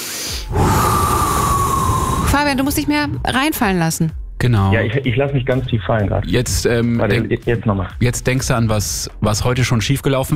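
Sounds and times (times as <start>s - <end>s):
deep deliberate breath with a slight rasp: 0.0s - 3.2s
speech: 2.4s - 10.3s.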